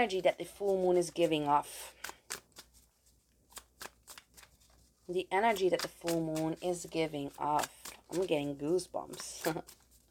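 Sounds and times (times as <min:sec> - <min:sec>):
speech: 0:00.0 - 0:02.2, 0:05.1 - 0:09.8
tarot cards being shuffled: 0:00.5 - 0:10.0.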